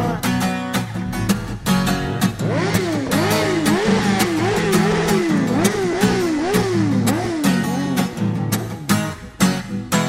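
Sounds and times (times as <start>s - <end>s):
pounding rhythmic beat at a party: 0.1s - 9.7s
R1 sport motorcycle 1,100 cc engine revving at a party: 0.8s - 9.9s.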